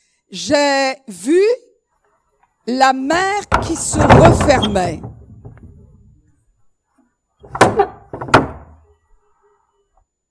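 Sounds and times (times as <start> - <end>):
speech: 0.3 - 1.6, 2.7 - 5.1
door slamming shut: 3.1 - 6.2, 7.4 - 8.8.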